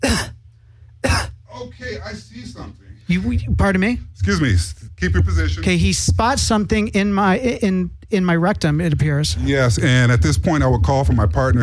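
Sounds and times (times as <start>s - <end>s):
person squatting coughing: 0.0s - 0.4s, 1.0s - 1.5s
speech: 0.1s - 0.3s, 1.9s - 11.6s.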